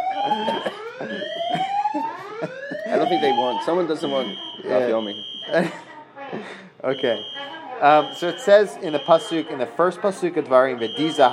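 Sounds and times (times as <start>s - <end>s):
fire alarm with rising electronic whoop: 0.0s - 5.9s, 6.9s - 11.3s
laughter: 0.0s - 6.8s
speech: 0.2s - 2.1s, 3.2s - 11.3s.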